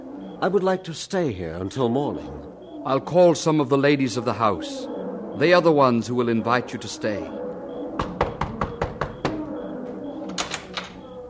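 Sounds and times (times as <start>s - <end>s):
speech: 0.4s - 7.4s
sharp knocks on a door: 8.0s - 9.5s.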